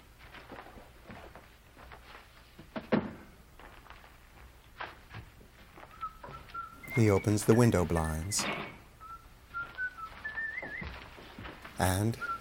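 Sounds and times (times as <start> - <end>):
faint room noise: 0.0 - 12.4
soft shuffling footsteps: 0.0 - 12.4
speech: 7.0 - 8.7, 11.8 - 12.4
sliding door closing with a solid thunk: 7.4 - 8.9.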